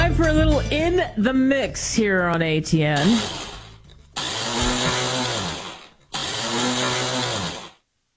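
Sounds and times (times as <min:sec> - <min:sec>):
speech: 0:00.2 - 0:03.5
malfunctioning kitchen blender motor straining and grinding: 0:03.0 - 0:07.8.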